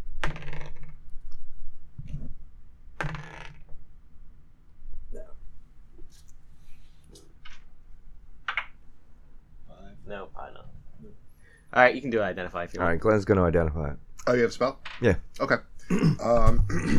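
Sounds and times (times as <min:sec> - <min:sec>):
dice rolling across a tabletop: 0:00.2 - 0:01.0, 0:03.0 - 0:03.7
speech: 0:11.7 - 0:16.9.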